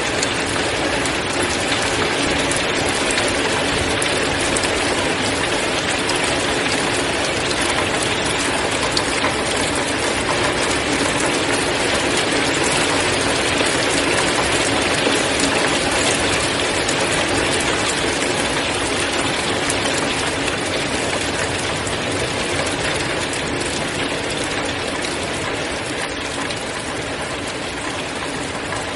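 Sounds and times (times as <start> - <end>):
natural February rainfall: 0.0 - 28.9.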